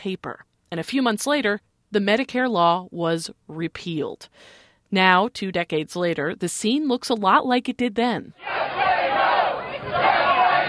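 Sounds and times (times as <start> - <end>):
speech: 0.0 - 8.8
angry crowd shouting at a politician outside a grocery store in Austin, Texas: 8.4 - 10.6.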